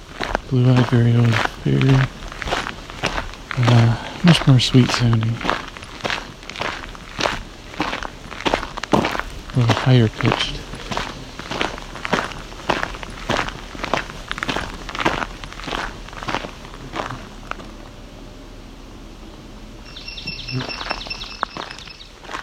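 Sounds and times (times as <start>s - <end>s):
crunching footsteps: 0.0s - 18.0s, 19.9s - 22.4s
speech: 0.5s - 2.2s, 3.6s - 5.6s, 9.6s - 10.6s
swamp sparrow ringing trill: 19.9s - 22.4s.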